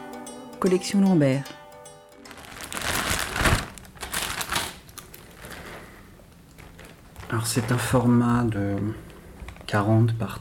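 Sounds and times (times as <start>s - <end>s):
speech: 0.6s - 1.6s, 7.3s - 9.1s, 9.7s - 10.3s
plastic bag being crumpled: 2.2s - 8.0s.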